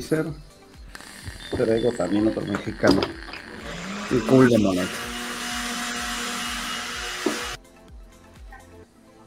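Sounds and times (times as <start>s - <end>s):
speech: 0.0s - 0.6s, 1.5s - 3.4s, 4.1s - 5.1s
blender-like motor whirring: 0.9s - 7.6s.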